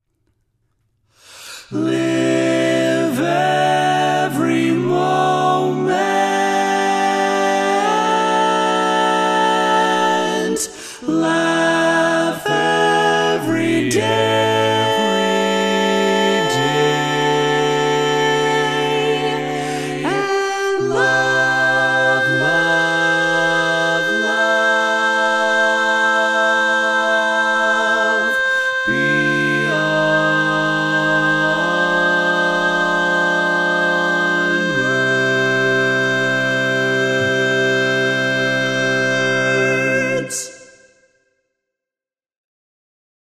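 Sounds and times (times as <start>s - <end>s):
tenor singing barbershop: 1.7s - 40.9s.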